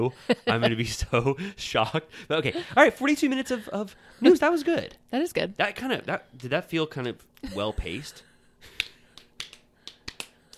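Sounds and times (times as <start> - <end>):
speech: 0.0 - 8.3
hosts clapping hands: 8.7 - 10.5.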